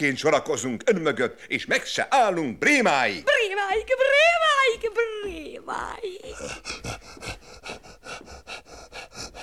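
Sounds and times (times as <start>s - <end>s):
speech: 0.0s - 7.3s
rhythmic panting: 3.2s - 9.4s.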